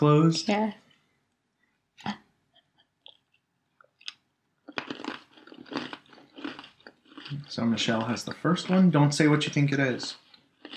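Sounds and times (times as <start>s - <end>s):
speech: 0.0s - 0.8s, 2.0s - 2.2s, 7.3s - 10.7s
person biting a crunchy cookie: 2.6s - 8.8s, 10.1s - 10.7s
person chewing a crunchy cookie: 4.0s - 10.7s.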